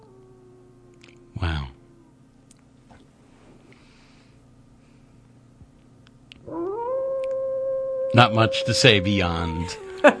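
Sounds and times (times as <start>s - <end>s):
long loud howl: 0.0s - 2.3s, 6.4s - 10.1s
speech: 8.1s - 10.1s.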